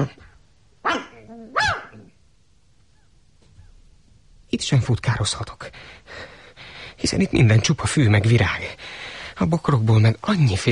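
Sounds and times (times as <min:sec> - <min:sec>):
speech: 0:00.0 - 0:00.2, 0:04.6 - 0:06.3, 0:07.0 - 0:10.7
dog on a leash barking in town: 0:00.8 - 0:02.1.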